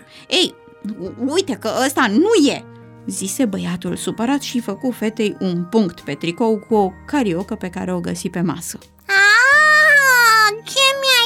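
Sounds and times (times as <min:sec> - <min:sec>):
speech: 0:00.1 - 0:09.0
girl crying in long drawn-out wails: 0:09.1 - 0:10.6.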